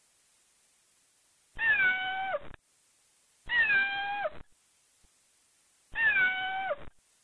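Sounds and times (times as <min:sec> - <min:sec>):
cat meowing with long falling calls: 0:01.6 - 0:02.5, 0:03.5 - 0:04.4, 0:05.9 - 0:06.9.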